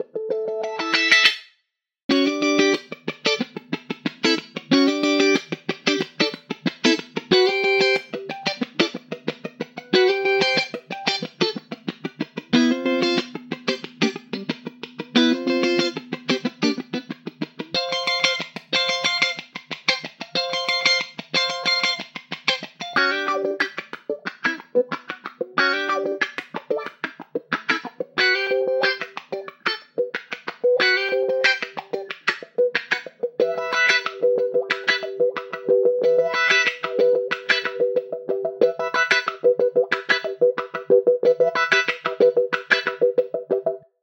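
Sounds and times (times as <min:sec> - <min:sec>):
bright electric guitar: 0:00.0 - 0:01.4, 0:02.1 - 0:43.9.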